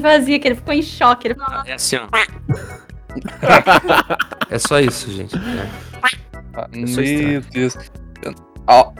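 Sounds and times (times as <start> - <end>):
speech: 0.0 - 8.9
person imitating a duck's quack with raspy nasal honks: 2.2 - 2.5
laughter: 2.5 - 5.9.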